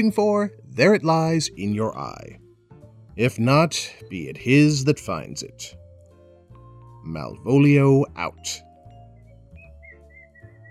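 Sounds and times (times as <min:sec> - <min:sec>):
speech: 0:00.0 - 0:02.4, 0:03.2 - 0:05.8, 0:07.0 - 0:08.7
person whistling a tune: 0:09.2 - 0:10.6.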